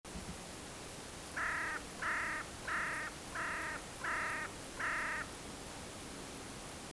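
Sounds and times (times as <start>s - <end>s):
background hiss: 0.1s - 6.9s
Carrion crow Corvus corone cawing: 1.4s - 5.3s.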